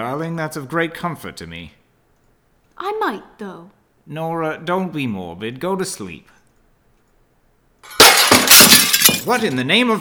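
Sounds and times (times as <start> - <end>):
speech: 0.0 - 1.8, 2.8 - 6.4, 9.2 - 9.9
breaking and falling glass shards: 7.8 - 9.6
window glass shattering from a thrown rock: 7.8 - 9.6.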